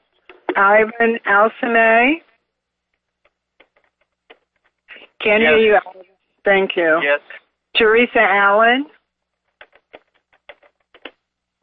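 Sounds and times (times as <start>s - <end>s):
faint steady hum: 0.0s - 11.6s
speech: 0.6s - 2.3s, 5.2s - 9.0s
keyboard typing heard through a phone line: 9.5s - 11.2s.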